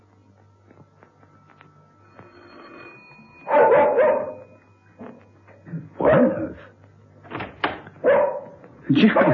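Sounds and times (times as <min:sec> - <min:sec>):
faint low hum: 0:00.0 - 0:09.3
dog barking: 0:03.5 - 0:04.4, 0:06.0 - 0:06.4, 0:08.0 - 0:09.3
dog yipping: 0:03.5 - 0:04.4, 0:08.0 - 0:08.6
speech: 0:08.9 - 0:09.3.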